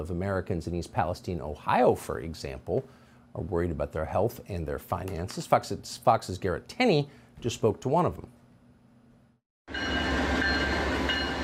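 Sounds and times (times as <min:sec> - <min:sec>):
speech: 0:00.0 - 0:08.4
freight train roaring past on tracks in East Palestine Ohio: 0:09.7 - 0:11.4.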